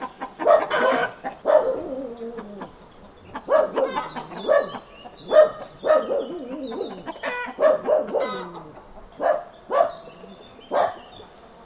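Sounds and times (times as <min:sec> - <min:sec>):
chicken giving a drawn-out falling squawk: 0:00.0 - 0:09.0
chickens clucking in a farmyard: 0:00.0 - 0:11.6.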